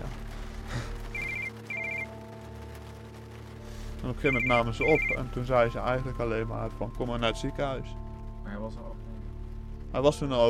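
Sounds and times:
telephone ringing in electronic trilling bursts: 0:01.2 - 0:02.1, 0:04.3 - 0:05.2
speech: 0:04.0 - 0:09.1, 0:09.9 - 0:10.4.

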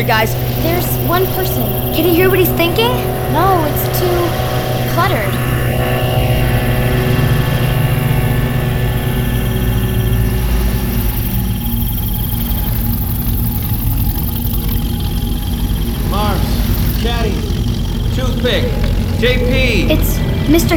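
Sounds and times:
speech: 0:00.0 - 0:05.5, 0:18.4 - 0:20.7
boat engine droning with a propeller-like buzz: 0:00.0 - 0:20.7.

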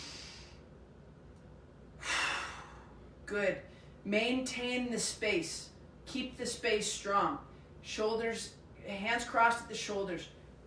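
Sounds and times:
deep breaths during a stretching exercise: 0:00.0 - 0:00.6, 0:02.0 - 0:03.0
speech: 0:03.3 - 0:10.4.

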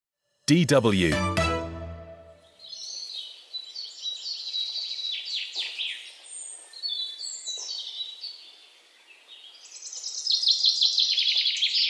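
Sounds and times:
speech: 0:00.5 - 0:01.4
several birds chirping and warbling outdoors in spring on a small farm near an apiary: 0:02.6 - 0:11.8.

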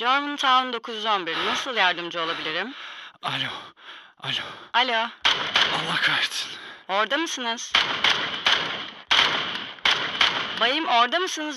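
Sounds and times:
speech: 0:00.0 - 0:08.4, 0:10.6 - 0:11.5
sharp gunshots over a tinny phone line during an emergency call in Germantown: 0:05.2 - 0:06.2, 0:07.7 - 0:11.0.

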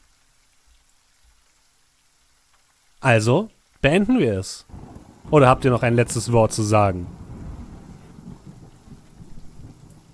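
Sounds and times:
speech: 0:03.0 - 0:07.2
thunder rolling as a low dense rumble: 0:04.7 - 0:10.1.

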